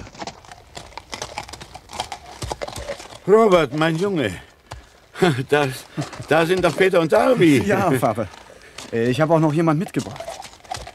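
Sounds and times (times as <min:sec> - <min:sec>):
hooves of several horses clattering on cobblestones: 0:00.0 - 0:10.9
speech: 0:03.2 - 0:04.5, 0:05.2 - 0:10.2.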